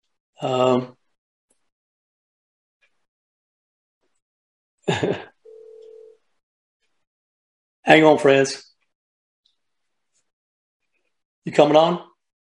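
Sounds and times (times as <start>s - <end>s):
speech: 0.4s - 1.0s, 7.9s - 8.7s, 11.4s - 12.1s
telephone call being placed with dialing tones: 5.4s - 6.2s.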